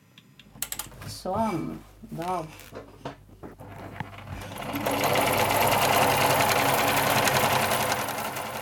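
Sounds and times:
speech: 1.1 - 3.2
sewing machine sewing Norwegian folk costumes in Ramnes Vestfold Norway: 3.6 - 8.6.

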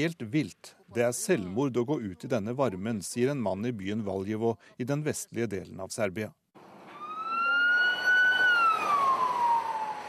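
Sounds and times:
speech: 0.0 - 6.4
ambulance siren in Romania during a heat wave: 6.9 - 10.0.

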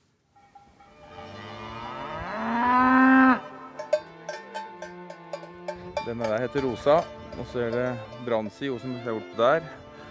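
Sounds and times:
cowbell clanks: 0.4 - 1.6, 3.4 - 9.2
cow mooing: 1.1 - 4.9
speech: 6.1 - 9.8.

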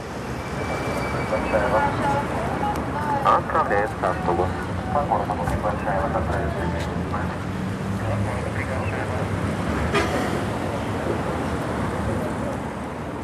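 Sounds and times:
heavy city street traffic: 0.0 - 13.2
vehicles passing: 0.0 - 13.2
indistinct voices murmuring: 1.1 - 10.5.

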